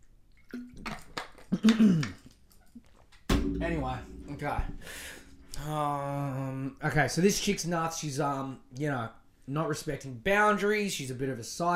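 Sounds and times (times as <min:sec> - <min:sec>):
person drinking water with gulps and swallows: 0:00.4 - 0:02.4
speech: 0:01.6 - 0:02.2, 0:03.6 - 0:11.7.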